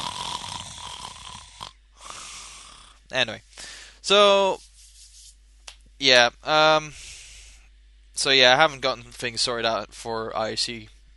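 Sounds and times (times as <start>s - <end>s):
person imitating snoring: 0.0s - 3.0s
speech: 3.1s - 4.6s, 6.0s - 7.0s, 8.2s - 11.0s.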